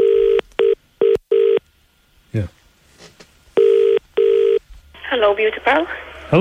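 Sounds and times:
loud electronic telephone ringing: 0.0s - 1.6s, 3.6s - 4.6s
speech: 2.3s - 2.6s, 5.2s - 6.3s.

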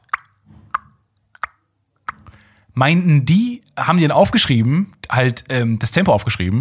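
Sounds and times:
voice imitating metronome with mouth clicks: 0.0s - 2.5s
speech: 2.8s - 6.5s.

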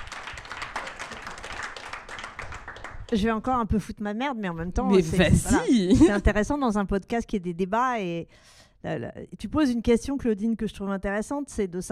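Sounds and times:
audience applauding: 0.0s - 3.4s
speech: 3.1s - 11.9s.

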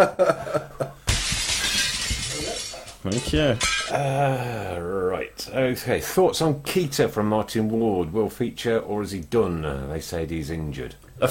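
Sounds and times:
speech: 0.0s - 1.0s, 3.0s - 11.3s
glass shards scattering: 1.0s - 3.9s
window glass smashing: 1.1s - 3.9s.

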